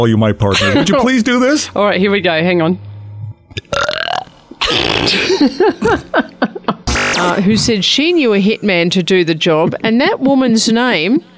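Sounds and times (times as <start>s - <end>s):
speech: 0.0s - 2.9s, 5.0s - 6.6s, 7.2s - 11.3s
laughter: 0.4s - 1.4s, 5.1s - 7.4s
short croaking belches: 3.2s - 5.4s
loud drawn-out burp: 3.4s - 5.4s
trailing gulps: 3.5s - 5.5s.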